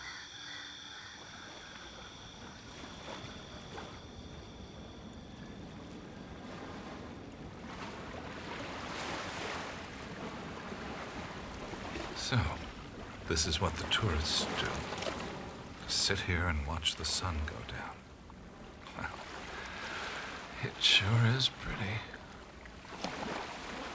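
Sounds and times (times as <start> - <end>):
ocean surf washing in: 0.0 - 23.9
bigger ocean wave breaking: 1.2 - 23.9
speech: 12.3 - 12.6, 13.3 - 15.0, 15.9 - 18.0, 20.7 - 22.1.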